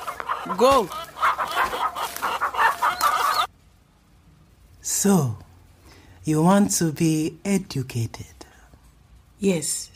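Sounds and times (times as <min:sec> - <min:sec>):
chickens clucking and squawking: 0:00.0 - 0:03.6
speech: 0:00.5 - 0:01.0, 0:05.0 - 0:05.4, 0:06.3 - 0:08.4, 0:09.4 - 0:09.9.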